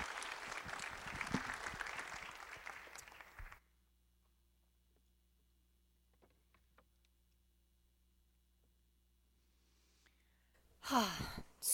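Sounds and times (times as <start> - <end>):
crowd applause: 0.0 - 3.6
speech: 10.9 - 11.7.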